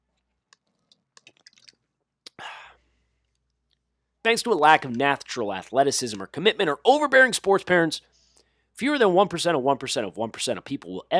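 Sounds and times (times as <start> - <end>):
wet mouth clicks and smacks from sipping a Pepsi: 0.5 - 3.4
speech: 4.3 - 8.1, 8.8 - 11.1.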